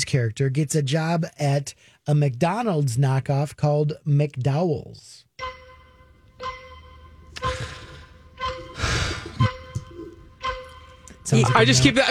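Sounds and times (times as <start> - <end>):
speech: 0.1 - 5.6, 11.3 - 12.0
countdown clock ticking: 5.4 - 12.0
sustained droning musical tone: 5.4 - 12.0.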